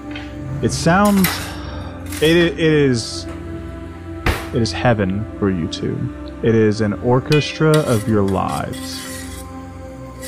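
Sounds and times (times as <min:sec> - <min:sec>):
speech: 0:00.6 - 0:01.6, 0:02.2 - 0:03.3, 0:04.5 - 0:09.0
dishes and cutlery clattering on tables: 0:01.0 - 0:02.4.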